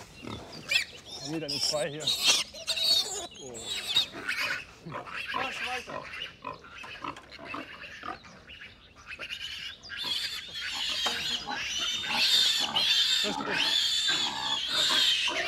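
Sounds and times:
sows and piglets grunting while being driven to pasture: 0.0s - 15.4s
piglets giving high squeaky calls: 0.2s - 15.4s
speech: 1.2s - 2.4s, 4.8s - 7.2s, 13.2s - 13.8s.

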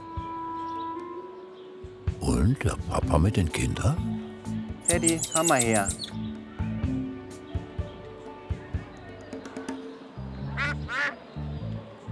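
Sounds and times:
busy outdoor noise: 0.0s - 12.1s
speech: 2.2s - 4.1s, 4.9s - 6.2s
ducks quacking: 4.9s - 6.1s, 10.6s - 11.2s.

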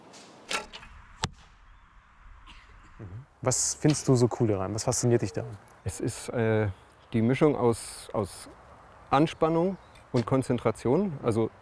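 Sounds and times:
arrow loosed from a bow with a sharp whoosh: 0.2s - 2.8s
speech: 3.4s - 11.6s.

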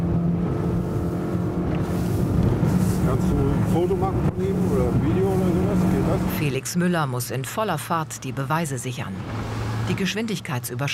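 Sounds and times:
motorboat engine roaring while speeding across water in a police pursuit: 0.0s - 10.9s
wind and water rushing: 0.0s - 10.9s
speech: 3.1s - 10.9s.

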